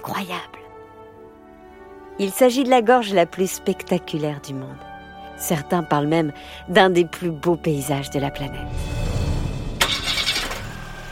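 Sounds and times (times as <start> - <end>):
speech: 0.0 - 0.6, 2.2 - 9.0
camper van engine starting: 9.3 - 11.1.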